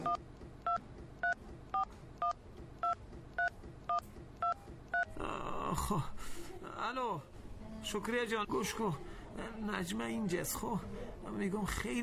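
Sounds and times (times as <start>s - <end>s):
phone keypad two-tone beeps while dialing a number: 0.0s - 5.1s
speech: 5.8s - 12.0s.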